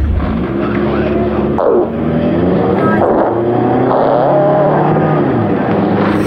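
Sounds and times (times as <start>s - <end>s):
car engine revving: 0.0s - 6.2s.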